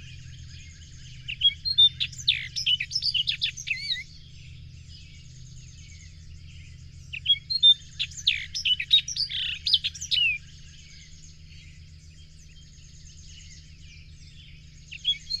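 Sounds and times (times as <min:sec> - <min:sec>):
bird song of high twittering phrases, curling whistles and sharp chirps: 0:00.0 - 0:15.3
constant low hum: 0:00.0 - 0:15.3.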